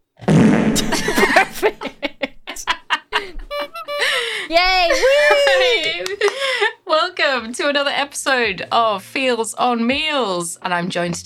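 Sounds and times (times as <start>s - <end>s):
fart noise: 0.2s - 1.3s
laughter: 0.8s - 6.8s
speech: 7.4s - 11.2s.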